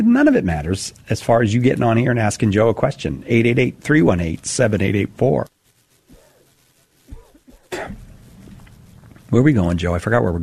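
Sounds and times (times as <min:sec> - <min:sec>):
speech: 0:00.0 - 0:05.6, 0:09.3 - 0:10.4
person coughing heavily with rough throaty hacks: 0:07.1 - 0:08.0.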